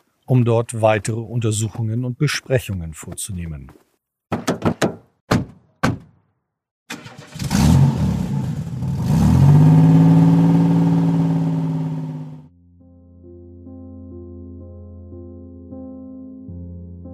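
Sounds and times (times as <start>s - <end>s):
speech: 0.3s - 3.9s
car engine cranking and revving as the car pulls away: 7.0s - 12.5s.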